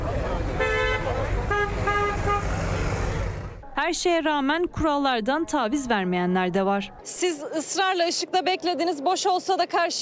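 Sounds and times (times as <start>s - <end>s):
rumble of engines and busy street traffic in a megacity: 0.0s - 10.0s
car horns honking as warnings in city traffic: 0.5s - 3.4s
speech: 3.9s - 10.0s.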